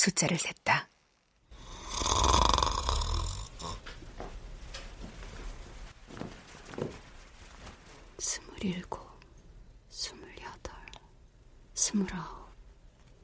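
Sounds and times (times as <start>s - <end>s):
speech: 0.0s - 0.9s, 8.6s - 9.0s, 11.9s - 12.4s
loud rasping snore from sleep apnea: 1.6s - 3.8s.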